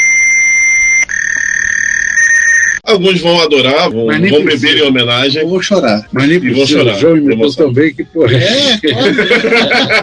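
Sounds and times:
computer data on cassette tape playing as high-pitched electronic tones: 0:00.0 - 0:02.8
speech: 0:02.9 - 0:10.0
laughter: 0:08.2 - 0:10.0.

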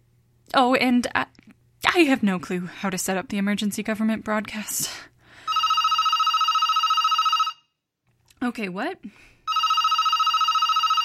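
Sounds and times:
speech: 0:00.5 - 0:01.4, 0:02.0 - 0:05.1, 0:08.5 - 0:09.3
landline telephone bell ringing: 0:05.4 - 0:07.7, 0:09.5 - 0:11.0.

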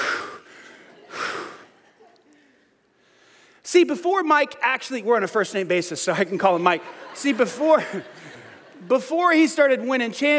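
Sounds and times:
deep breath drawn and released: 0:00.0 - 0:01.7, 0:02.4 - 0:03.6
laughter: 0:00.7 - 0:02.8, 0:06.3 - 0:10.3
speech: 0:03.7 - 0:10.3.

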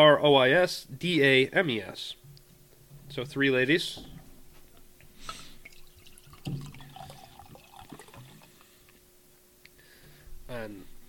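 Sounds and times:
speech: 0:00.0 - 0:02.2, 0:03.1 - 0:04.1, 0:06.5 - 0:06.7, 0:10.5 - 0:10.9
gold honey-colored beer being poured into a glass: 0:05.6 - 0:08.8.

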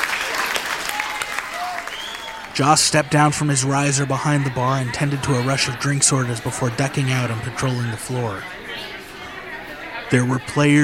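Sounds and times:
crowd clapping: 0:00.0 - 0:06.3
crowd shouting: 0:00.0 - 0:10.8
crowd whistles: 0:01.8 - 0:02.6
speech: 0:02.6 - 0:09.0, 0:10.1 - 0:10.8.

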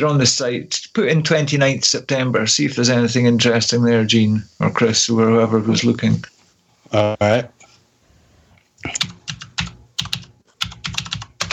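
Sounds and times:
speech: 0:00.0 - 0:07.6
typing on a loud computer keyboard: 0:08.8 - 0:11.5.

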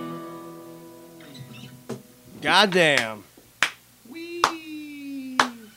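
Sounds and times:
speech: 0:02.5 - 0:03.2
sharp hand claps: 0:02.7 - 0:04.6, 0:05.3 - 0:05.6.

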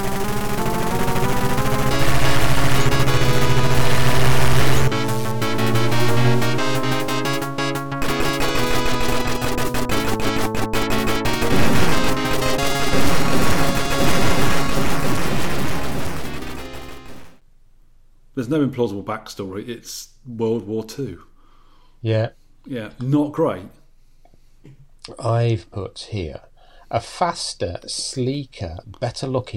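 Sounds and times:
arcade video game music from a Yamaha FM sound chip: 0:00.0 - 0:17.4
speech: 0:18.5 - 0:21.3, 0:22.0 - 0:23.8, 0:24.6 - 0:29.5.

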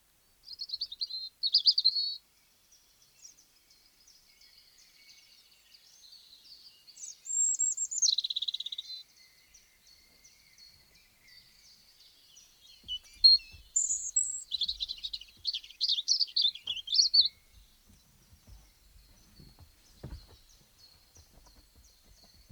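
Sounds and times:
European robin singing: 0:00.4 - 0:02.2, 0:06.9 - 0:22.5
scuffling: 0:12.7 - 0:22.5
soft low thumps: 0:12.7 - 0:22.5.

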